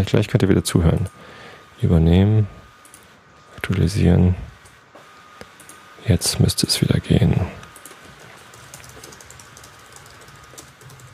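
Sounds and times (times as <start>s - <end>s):
speech: 0.0s - 2.6s, 3.6s - 4.5s, 6.0s - 7.6s
loud typing on a computer keyboard: 7.7s - 11.1s.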